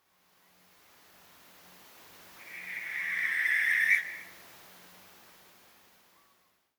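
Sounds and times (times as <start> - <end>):
Western Barn Owl Tyto alba calling at night: 2.4 - 4.4.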